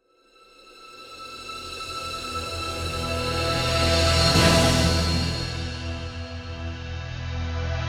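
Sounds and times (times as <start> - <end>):
orchestra swell accent: 1.8 - 7.7.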